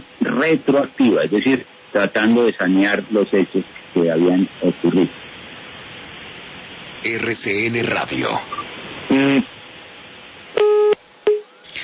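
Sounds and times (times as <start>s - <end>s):
faint phone line hiss: 0.0s - 11.8s
speech: 0.4s - 5.2s, 7.0s - 9.5s
buzzy electronic telephone beeps after a dropped call: 10.6s - 11.4s.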